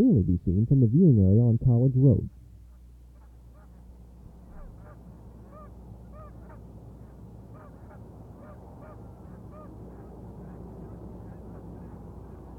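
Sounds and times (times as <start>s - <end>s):
speech: 0.0s - 2.4s
flock of Canada geese honking on a pond: 2.7s - 12.5s
heavy road traffic rumble: 3.4s - 12.5s.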